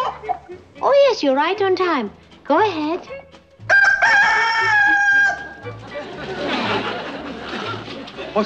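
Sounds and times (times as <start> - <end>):
speech: 0.4 - 3.3, 4.6 - 4.9
rooster crowing: 3.7 - 5.7
laughter: 4.4 - 8.4.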